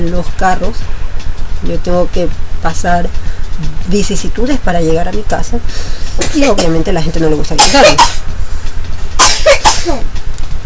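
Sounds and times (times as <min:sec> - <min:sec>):
speech: 0:00.0 - 0:01.0, 0:01.6 - 0:08.5, 0:09.8 - 0:10.2
young girl coughing harshly: 0:07.6 - 0:08.2, 0:09.2 - 0:10.1.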